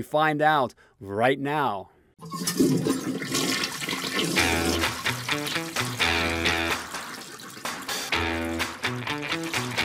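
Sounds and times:
speech: 0.0 - 3.1
toilet flushing: 2.2 - 9.8.

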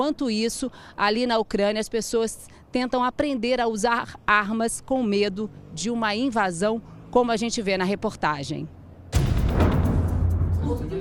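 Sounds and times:
speech: 0.0 - 8.8
heavy shelling blast in Luhansk eastern Ukraine: 9.1 - 11.0.

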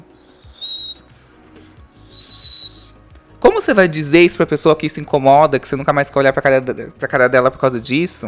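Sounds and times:
voice imitating a man's wheezy breathing with faint whistle: 0.0 - 3.0
speech: 3.4 - 8.2.

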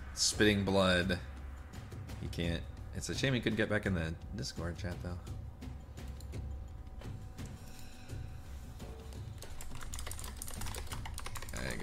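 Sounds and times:
speech: 0.2 - 1.3, 2.2 - 5.4
typing on a computer keyboard: 9.4 - 11.8.

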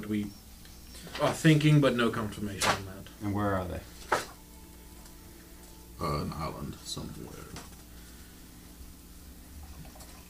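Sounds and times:
speech: 0.1 - 0.4, 1.0 - 3.9, 6.0 - 7.6
black root stout pouring into a glass: 9.6 - 10.2.

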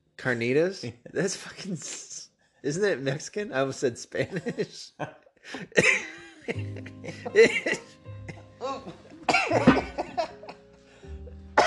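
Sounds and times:
speech: 0.2 - 7.9, 8.8 - 9.9
laughter: 4.2 - 10.7
high-pitched hacking coughing: 5.5 - 10.6.

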